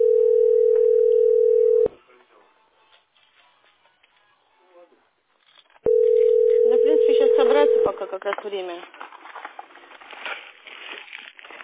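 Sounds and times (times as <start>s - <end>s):
telephone ringback tone while calling a heating billing centre: 0.0s - 1.9s, 5.9s - 8.0s
speech: 8.2s - 9.0s.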